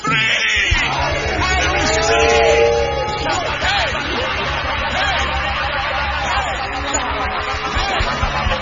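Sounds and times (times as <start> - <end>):
audience shouting a phrase in unison: 0.1 - 5.2
laughter: 0.9 - 8.6.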